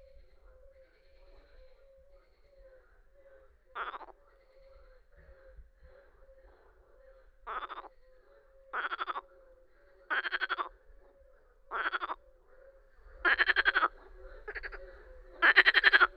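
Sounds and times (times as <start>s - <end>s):
Marsh frog giving rattling, pulsed croaks: 7.5s - 7.9s, 8.8s - 9.2s, 10.1s - 10.7s, 11.7s - 12.2s, 13.2s - 14.8s, 15.4s - 16.1s.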